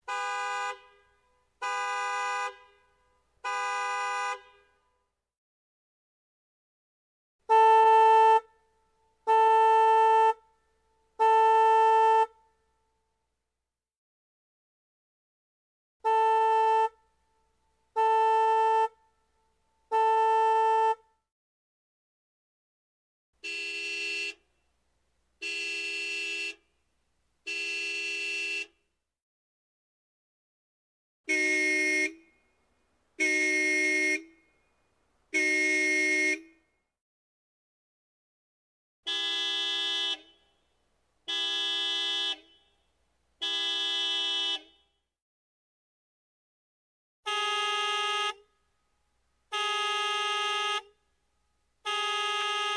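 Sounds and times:
American car horn: 0.0 - 5.1, 7.4 - 12.6, 16.0 - 19.3, 19.9 - 21.2, 23.4 - 24.7, 25.4 - 26.8, 27.4 - 28.9, 31.3 - 36.8, 39.0 - 45.1, 47.2 - 48.9, 49.5 - 51.1, 51.8 - 52.7.

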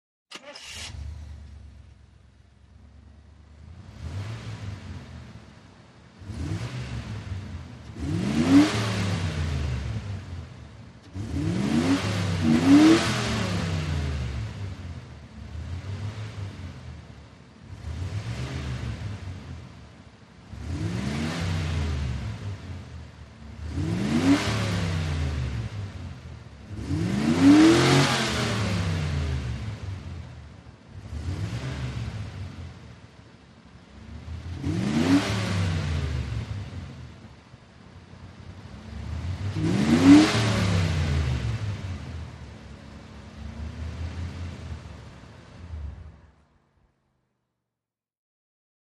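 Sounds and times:
1990 Chevy Camaro engine revving hard: 3.6 - 5.4, 6.2 - 17.0, 17.6 - 19.7, 20.5 - 22.9, 23.5 - 32.9, 34.0 - 37.2, 38.8 - 42.5.

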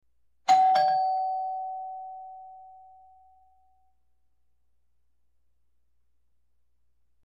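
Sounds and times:
ding dong doorbell: 0.5 - 3.9.

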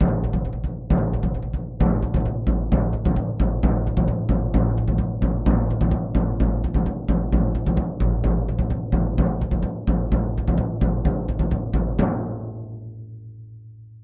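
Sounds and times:
tom drum rhythm: 0.0 - 12.6.

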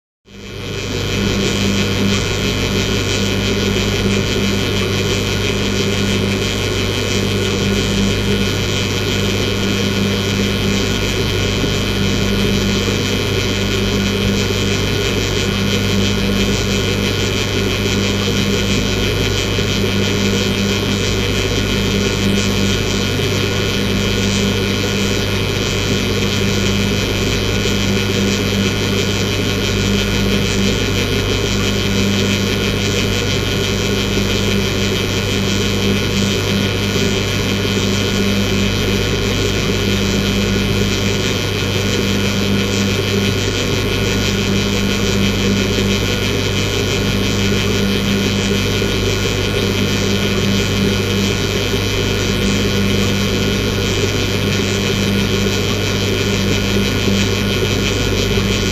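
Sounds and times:
light electric motor running: 0.4 - 58.7.

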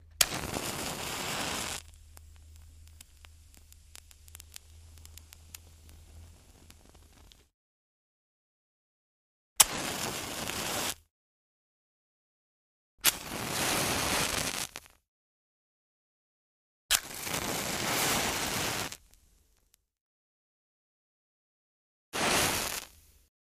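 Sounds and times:
match from a box igniting: 0.2 - 7.5, 9.6 - 11.1, 13.0 - 15.0, 16.9 - 19.3, 22.2 - 23.3.

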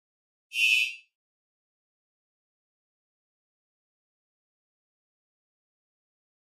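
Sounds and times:
electronic mouse-over sound: 0.6 - 1.0.

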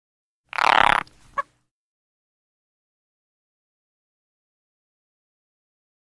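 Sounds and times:
frog croaking: 0.5 - 1.5.

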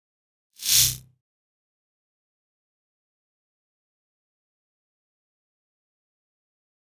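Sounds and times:
electric crackle: 0.6 - 1.0.

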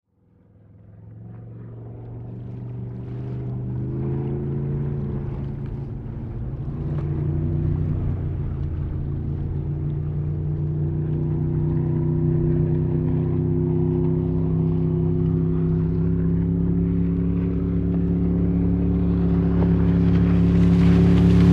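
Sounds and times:
speedboat passing and accelerating with very loud engine: 0.1 - 21.5.

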